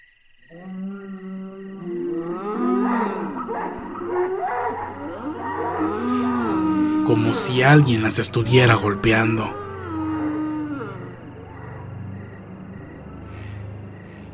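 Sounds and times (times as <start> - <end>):
cows mooing: 0.6 - 11.8
speech: 7.1 - 9.6.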